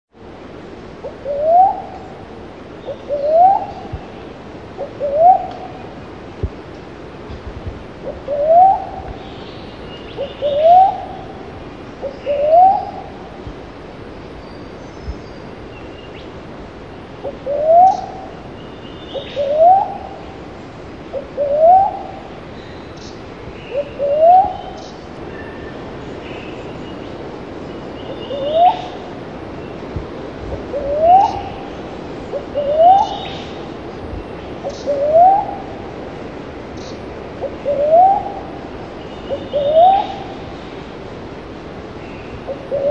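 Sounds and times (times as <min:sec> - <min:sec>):
slender-billed cuckoo dove calling: 0:01.0 - 0:02.2, 0:02.8 - 0:06.0, 0:08.0 - 0:13.2, 0:17.2 - 0:20.3, 0:21.1 - 0:22.3, 0:23.0 - 0:25.8, 0:27.9 - 0:29.1, 0:30.6 - 0:33.7, 0:34.6 - 0:35.9, 0:36.8 - 0:40.5, 0:42.1 - 0:42.8.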